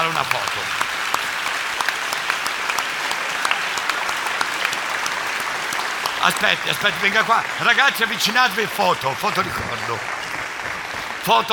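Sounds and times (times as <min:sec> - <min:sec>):
audience applause: 0:00.0 - 0:11.5
speech: 0:06.2 - 0:10.2, 0:11.2 - 0:11.5.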